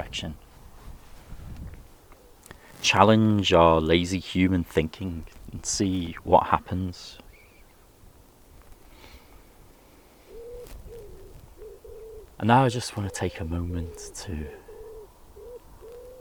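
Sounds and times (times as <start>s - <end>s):
speech: 0.0s - 0.4s, 2.8s - 7.2s, 12.4s - 14.6s
birds singing soft low cooing phrases: 2.0s - 2.6s, 6.0s - 7.9s, 8.9s - 16.2s.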